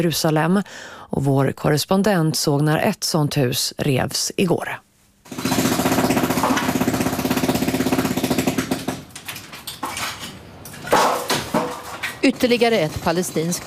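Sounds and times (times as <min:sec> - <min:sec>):
speech: 0:00.0 - 0:05.6, 0:12.2 - 0:13.6
jackhammer demolishing a house: 0:05.3 - 0:09.2, 0:10.9 - 0:13.6
debris clanking and crashing from house demolition: 0:05.3 - 0:13.6.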